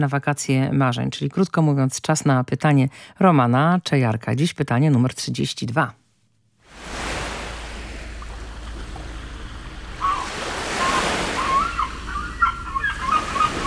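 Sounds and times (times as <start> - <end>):
speech: 0.0 - 6.0
sea surf washing and rolling: 6.6 - 13.6
seagulls crying while flying overhead: 8.2 - 13.6.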